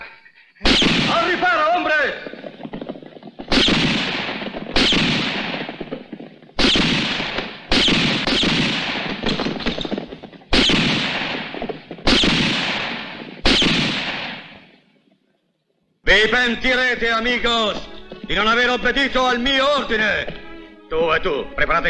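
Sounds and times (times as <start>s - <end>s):
rifle gunshots in a tense standoff: 0.6s - 14.8s
speech: 16.2s - 21.8s.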